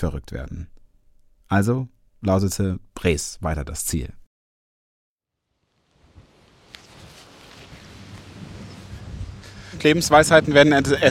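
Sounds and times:
speech: 0:00.0 - 0:00.8, 0:01.5 - 0:04.2, 0:09.8 - 0:11.0
strong wind roaring with buffeting rumble: 0:06.0 - 0:11.0.

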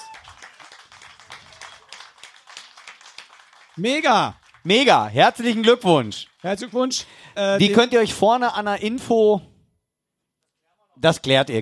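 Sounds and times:
crowd applause: 0:00.0 - 0:08.0
speech: 0:03.8 - 0:09.5, 0:11.0 - 0:11.6.

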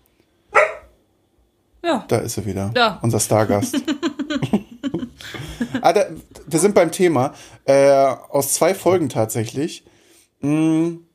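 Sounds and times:
single sharp dog bark: 0:00.5 - 0:01.0
speech: 0:01.8 - 0:04.6, 0:05.8 - 0:11.1
laughter: 0:03.3 - 0:06.8.

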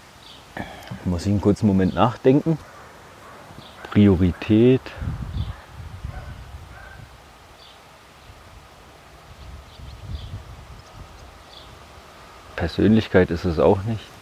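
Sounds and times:
leaves rustling in the wind: 0:00.0 - 0:14.2
speech: 0:00.6 - 0:02.7, 0:04.0 - 0:05.2, 0:12.6 - 0:14.1
soft low rumbles from wind gusts: 0:01.6 - 0:07.6, 0:08.2 - 0:13.9
faint bird chirps: 0:01.7 - 0:08.4, 0:09.3 - 0:12.5.

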